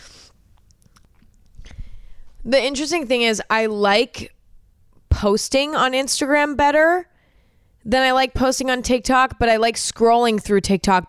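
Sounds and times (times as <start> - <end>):
person sipping cold water: 0.0 - 2.4
soft wet mouth clicks: 0.3 - 1.8
speech: 2.4 - 4.4, 5.2 - 7.1, 7.8 - 11.0.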